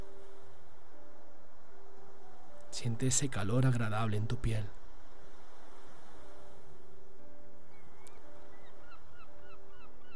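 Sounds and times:
steady wash of surf or wind: 0.0s - 9.5s
speech: 2.8s - 4.8s
seagulls calling: 7.6s - 10.1s.

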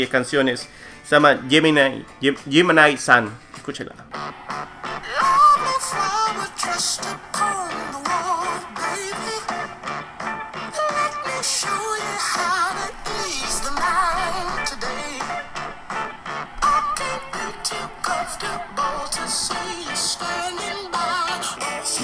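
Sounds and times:
speech: 0.0s - 4.6s
full-band southern rock song with vocals, electric guitar and drums: 4.4s - 22.0s.

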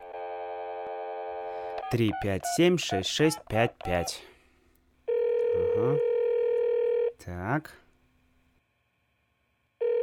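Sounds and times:
steady buzzy tone on a new telephone: 0.0s - 3.4s, 5.1s - 7.2s, 9.8s - 10.0s
speech: 1.9s - 4.3s, 7.2s - 7.8s.

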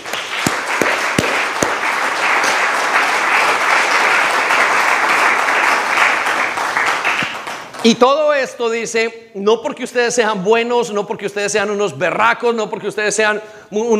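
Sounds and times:
crowd applauding: 0.0s - 8.0s
speech: 7.8s - 13.9s.

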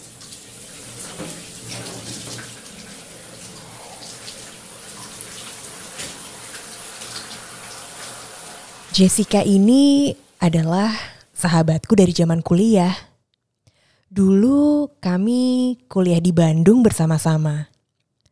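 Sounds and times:
water running and splashing as a person rinses their body while bathing in a bathroom: 0.0s - 10.7s
speech: 9.0s - 13.1s, 14.1s - 17.7s.

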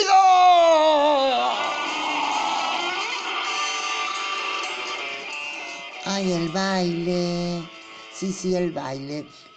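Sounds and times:
howling scream from a single voice: 0.1s - 5.3s
speech: 6.6s - 9.5s.

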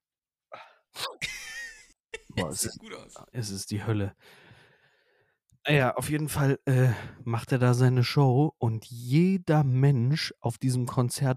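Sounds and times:
sneeze: 1.0s - 1.2s
speech: 2.4s - 4.5s, 5.6s - 11.3s.

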